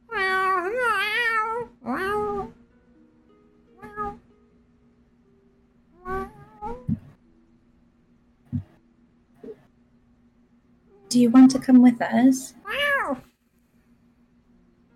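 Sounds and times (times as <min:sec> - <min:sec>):
person imitating a cat meowing: 0:00.1 - 0:02.5, 0:12.7 - 0:13.2
faint steady hum: 0:01.7 - 0:14.9
speech: 0:11.2 - 0:13.3.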